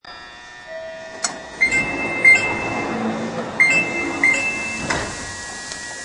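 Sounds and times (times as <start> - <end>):
door opening: 1.1 - 5.9.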